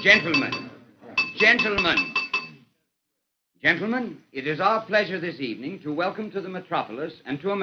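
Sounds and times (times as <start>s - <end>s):
speech: 0.0s - 0.6s, 1.4s - 2.2s, 3.6s - 7.6s
utensil tapping a drinking glass: 0.0s - 2.6s.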